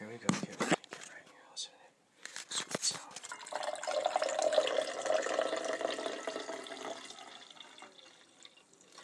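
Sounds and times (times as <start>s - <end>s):
freshly brewed coffee pouring into a cup: 3.3s - 9.0s.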